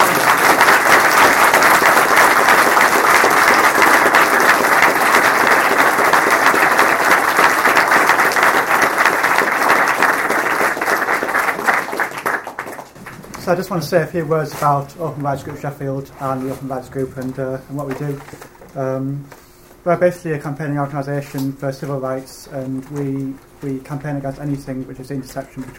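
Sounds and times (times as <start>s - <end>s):
crowd applauding in a room: 0.0s - 13.8s
speech: 13.5s - 25.7s.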